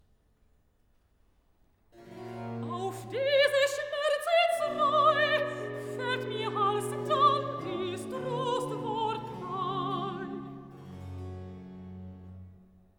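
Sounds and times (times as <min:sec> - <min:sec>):
soprano singing recitative: 0:02.2 - 0:10.8.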